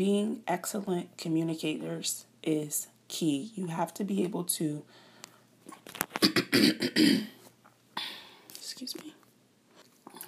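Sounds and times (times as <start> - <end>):
speech: 0.0 - 5.0, 5.9 - 7.4, 8.8 - 9.1
person with a cold coughing: 6.2 - 7.4.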